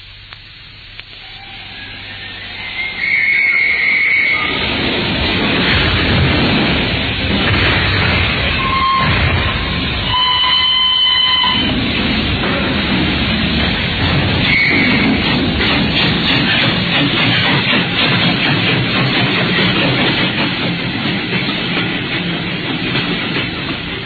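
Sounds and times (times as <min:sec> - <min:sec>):
rumble of train wheels and carriages rolling out of Paddington station: 0:00.0 - 0:24.0
high train whistle tones at Paddington station: 0:01.2 - 0:04.7, 0:08.6 - 0:11.7, 0:14.4 - 0:15.1.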